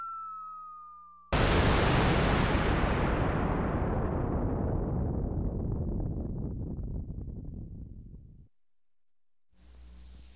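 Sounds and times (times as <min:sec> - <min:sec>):
bomb falling: 0:01.3 - 0:08.5.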